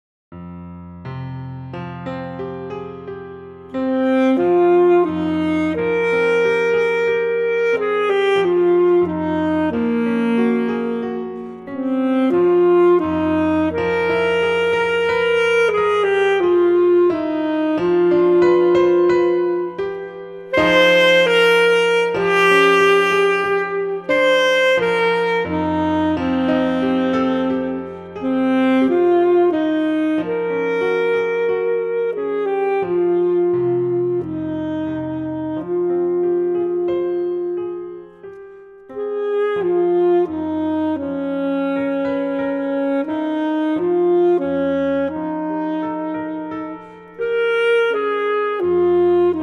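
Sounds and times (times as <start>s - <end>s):
full saxophone concert piece: 2.0s - 49.4s.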